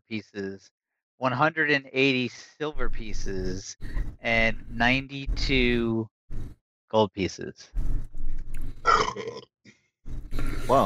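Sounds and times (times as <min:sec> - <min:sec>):
speech: 0:00.1 - 0:08.1, 0:09.2 - 0:09.5, 0:10.4 - 0:10.8
man burping after drinking ale: 0:08.9 - 0:09.4.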